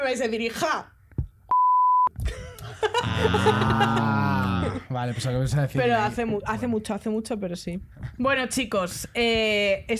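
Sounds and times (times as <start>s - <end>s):
speech: 0.0s - 1.0s, 2.2s - 9.9s
censor bleep over a spoken name: 1.5s - 2.1s
laughter: 2.3s - 5.4s.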